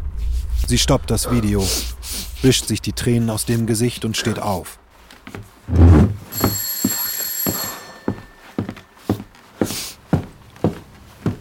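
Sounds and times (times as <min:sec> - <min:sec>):
speech: 0:00.7 - 0:06.2
steady footsteps across the floor: 0:04.9 - 0:11.3
apartment doorbell ringing with an electronic tone: 0:06.3 - 0:09.3.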